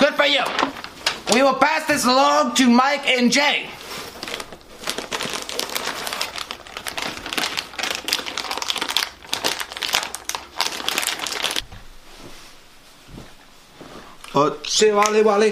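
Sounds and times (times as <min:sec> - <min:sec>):
construction paper being crinkled and crumpled: 0:00.0 - 0:01.6, 0:03.8 - 0:11.6
speech: 0:01.3 - 0:03.8, 0:14.4 - 0:15.5.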